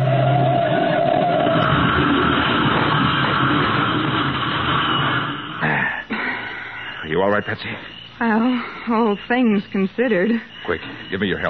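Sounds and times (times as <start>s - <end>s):
car engine revving: 0.0s - 5.6s
speech: 7.4s - 11.4s.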